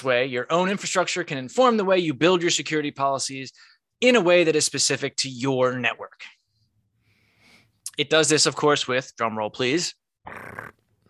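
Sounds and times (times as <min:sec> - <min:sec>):
speech: 0:00.0 - 0:06.4, 0:08.0 - 0:10.8
cat growling yowl: 0:10.3 - 0:10.8.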